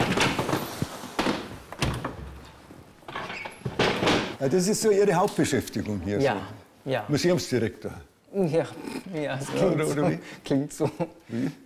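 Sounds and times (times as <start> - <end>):
wooden chair carried over and set down on the floor: 0.0 - 4.4
speech: 4.4 - 11.6.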